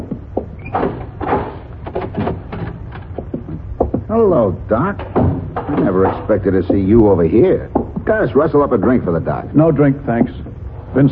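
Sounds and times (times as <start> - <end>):
door being opened: 0.0 - 4.1, 4.7 - 6.8
knocks, rattles and scraping clatter: 0.0 - 8.4
speech: 4.1 - 11.0.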